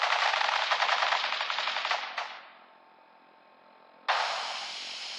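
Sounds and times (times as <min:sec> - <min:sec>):
machine-gun volley of rapid dense gunfire: 0:00.0 - 0:02.6, 0:04.1 - 0:04.7.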